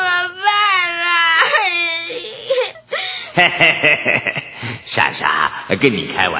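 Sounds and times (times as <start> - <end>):
girl crying: 0.0 - 3.4
laughter: 3.3 - 4.7
speech: 3.4 - 6.3.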